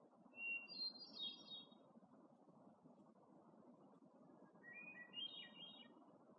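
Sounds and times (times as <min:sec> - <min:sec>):
hermit thrush singing ethereal whistled phrases in Algonquin Park: 0:00.3 - 0:01.8, 0:04.5 - 0:05.9.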